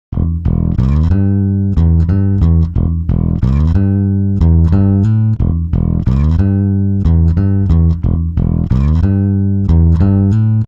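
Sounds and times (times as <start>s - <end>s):
time-stretched bass: 0.1s - 10.6s.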